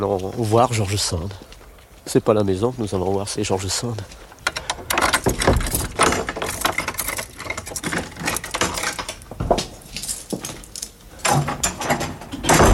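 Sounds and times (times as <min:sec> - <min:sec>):
speech: 0:00.0 - 0:01.5, 0:02.1 - 0:04.3
house door at an estate in Nohant being unlocked and opened: 0:04.3 - 0:12.7
busy metallic clatter: 0:04.4 - 0:12.7
keys jangling and scraping in a lock: 0:04.4 - 0:12.7.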